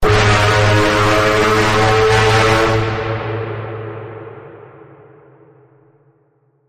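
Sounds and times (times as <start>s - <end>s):
full bend on G sharp: 0.0s - 3.2s.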